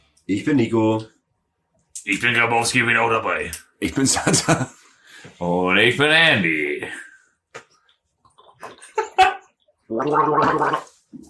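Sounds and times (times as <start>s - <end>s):
speech: 0.3s - 1.1s, 2.0s - 7.1s, 9.9s - 11.2s
people sipping a small refreshing drink: 7.6s - 11.2s
bubbling gurgle of a drink: 9.8s - 11.0s.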